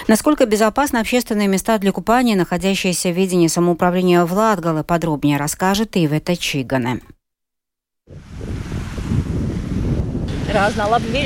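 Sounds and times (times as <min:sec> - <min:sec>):
speech: 0:00.1 - 0:07.2, 0:08.1 - 0:08.6, 0:10.5 - 0:11.2
steady wash of lake waves: 0:08.1 - 0:11.2
strong wind gusts buffeting the microphone on a lake: 0:08.1 - 0:11.2.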